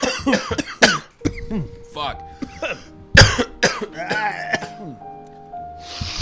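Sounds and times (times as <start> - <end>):
person coughing: 0.0 - 1.7, 2.4 - 5.0
speech: 0.2 - 0.8, 1.5 - 2.4
soft breathy hiss: 5.7 - 6.1.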